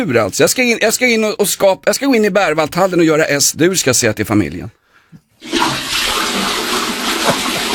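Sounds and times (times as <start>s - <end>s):
speech: 0.0s - 4.8s
toilet flushing with a rush of water: 5.4s - 7.7s.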